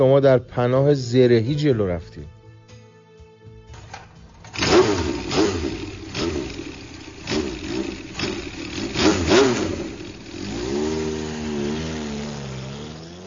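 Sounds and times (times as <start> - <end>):
speech: 0.0 - 2.4
trail motorcycle engine revving: 4.4 - 13.2.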